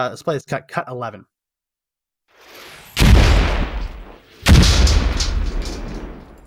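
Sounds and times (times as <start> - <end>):
speech: 0.0 - 1.3
anti-tank missile firing: 3.0 - 6.4.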